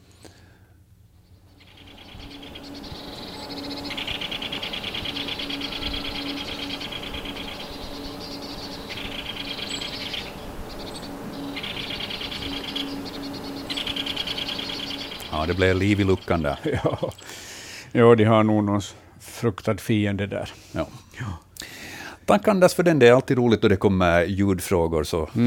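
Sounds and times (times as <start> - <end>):
great spotted woodpecker calls: 1.2 - 17.5
speech: 15.4 - 17.4, 18.0 - 21.4, 22.3 - 25.4
laughter: 16.6 - 17.3.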